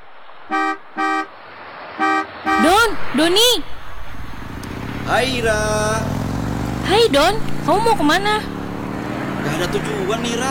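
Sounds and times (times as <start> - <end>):
road noise hiss: 0.0 - 10.4
speech: 0.5 - 0.8, 2.9 - 3.8, 5.1 - 6.1, 6.9 - 8.5, 9.5 - 10.4
car horn honking at a man on a motorcycle: 0.5 - 3.0.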